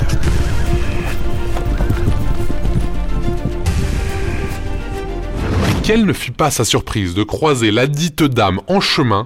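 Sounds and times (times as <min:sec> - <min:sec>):
horse hooves clip-clopping: 0:00.0 - 0:04.8
speech: 0:05.9 - 0:09.2.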